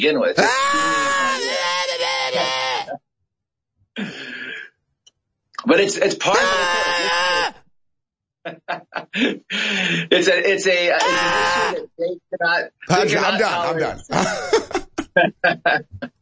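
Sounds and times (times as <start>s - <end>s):
speech: 0.0s - 1.5s, 5.6s - 7.2s, 8.4s - 16.2s
laughter: 0.4s - 3.0s, 6.2s - 7.5s, 8.5s - 11.8s, 12.8s - 16.2s
person imitating someone screaming down a phone line: 0.4s - 3.0s, 6.3s - 7.6s, 11.0s - 11.8s.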